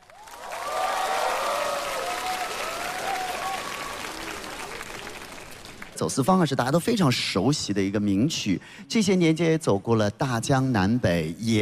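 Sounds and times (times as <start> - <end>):
faint cheers: 0.0 - 5.1
large audience applauding: 0.0 - 6.0
speech: 6.0 - 11.6.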